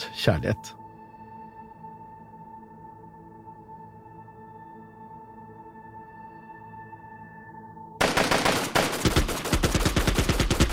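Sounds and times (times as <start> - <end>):
speech: 0.2 - 0.8
Kalashnikov rifle automatic gunfire volleys shot into the sky in Afghanistan: 8.0 - 10.7.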